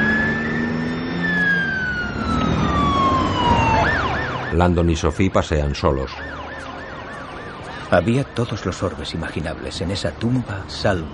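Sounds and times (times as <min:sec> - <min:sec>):
police patrol car siren driving away: 0:00.0 - 0:11.1
speech: 0:04.6 - 0:06.4, 0:07.9 - 0:11.1.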